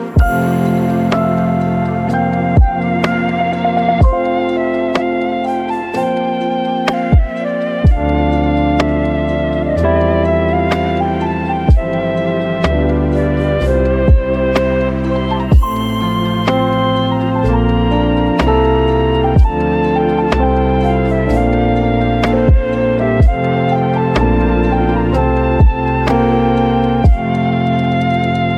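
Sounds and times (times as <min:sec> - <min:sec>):
lo-fi beat: 0:00.2 - 0:28.5.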